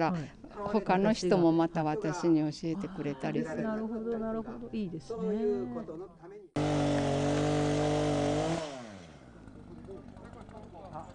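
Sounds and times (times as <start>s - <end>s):
speech: 0.0s - 6.4s
chainsaw running during fallen-tree removal training: 6.6s - 11.1s.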